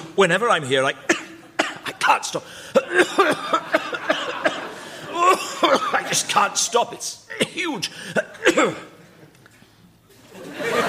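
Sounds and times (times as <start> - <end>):
speech: 0.2 - 1.2, 2.1 - 4.5, 5.2 - 8.9
harsh raspy coughs: 1.0 - 6.3, 7.3 - 9.0
laughter: 3.2 - 6.4, 10.1 - 10.8.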